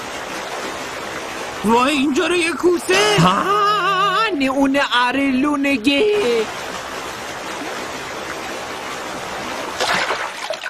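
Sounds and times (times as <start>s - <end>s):
water churning and bubbling: 0.0s - 10.6s
speech: 1.6s - 3.7s, 4.4s - 6.6s
splash of someone diving into water: 9.5s - 10.6s.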